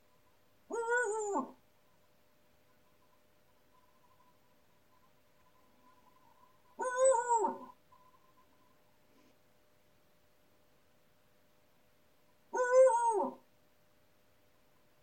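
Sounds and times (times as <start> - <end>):
owl calling: 0.7 - 1.6, 5.8 - 7.8, 12.5 - 13.4.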